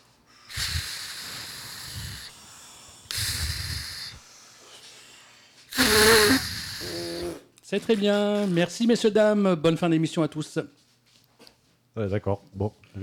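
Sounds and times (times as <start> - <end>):
person blowing into a drug test device: 0.5 - 2.3, 3.1 - 4.2, 5.7 - 7.4
speech: 7.7 - 10.8, 12.0 - 13.0.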